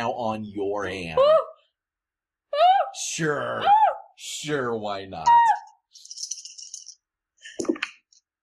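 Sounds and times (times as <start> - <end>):
speech: 0.0 - 1.5, 3.0 - 6.1
dice rattling in a cupped hand: 6.0 - 7.0.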